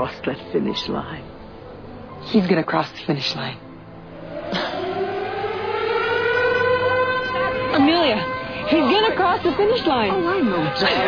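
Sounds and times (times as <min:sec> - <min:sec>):
speech: 0:00.0 - 0:01.4, 0:02.2 - 0:03.6, 0:07.8 - 0:11.0
loud siren wailing: 0:04.1 - 0:11.0.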